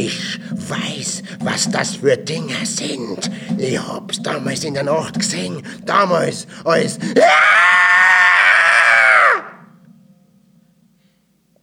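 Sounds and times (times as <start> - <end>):
speech: 0.1 - 7.8
old man's harsh piercing inhuman scream: 7.2 - 9.7.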